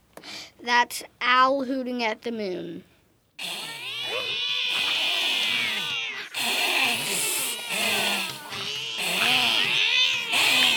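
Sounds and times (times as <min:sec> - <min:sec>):
speech: 0:00.6 - 0:03.5
cats fighting with yowls and screeches: 0:03.4 - 0:10.7.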